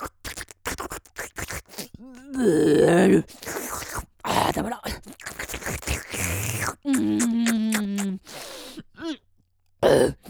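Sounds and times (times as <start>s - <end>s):
strained groaning vocal sound: 1.9s - 8.3s, 9.8s - 10.2s
speech: 2.3s - 5.2s
person choking, coughing and clearing their throat: 4.9s - 8.1s.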